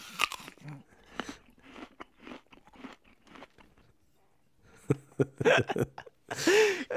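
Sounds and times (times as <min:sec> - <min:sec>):
wet crunchy chewing and biting: 0:00.0 - 0:03.9
laughter: 0:04.8 - 0:06.9.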